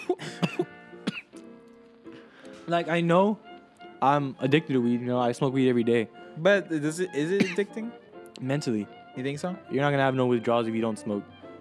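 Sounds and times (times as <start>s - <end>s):
person coughing: 0.0s - 1.4s, 7.4s - 7.8s
throat-clearing rasp: 0.0s - 1.4s, 7.3s - 7.8s
speech: 2.7s - 11.4s.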